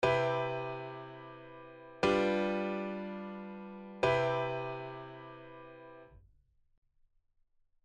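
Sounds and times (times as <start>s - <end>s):
C major seven and G seven chord progression: 0.0s - 6.0s.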